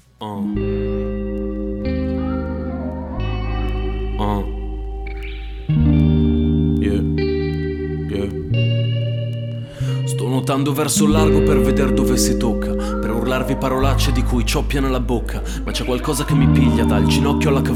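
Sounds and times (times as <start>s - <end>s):
speech: 0.2s - 0.7s, 10.5s - 17.7s
person singing: 0.2s - 5.4s, 9.6s - 17.7s
sustained reverb-soaked chords of a relaxing song: 0.4s - 17.7s.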